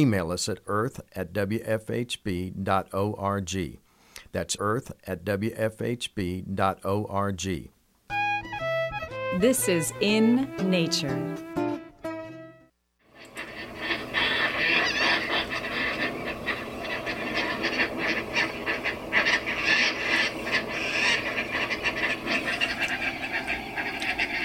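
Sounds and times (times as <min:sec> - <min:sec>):
speech: 0:00.0 - 0:08.2, 0:09.3 - 0:11.5
Caspian tern calls: 0:13.1 - 0:24.4.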